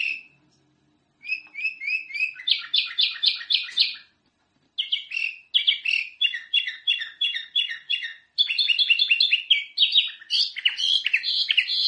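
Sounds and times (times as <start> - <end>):
sooty-headed bulbul singing: 0.0 - 4.2, 4.8 - 11.8.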